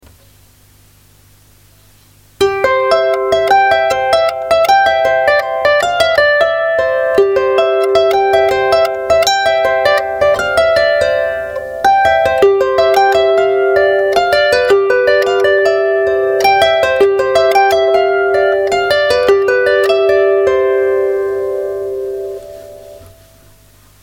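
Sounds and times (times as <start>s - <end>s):
mazurka music: 2.4s - 23.6s.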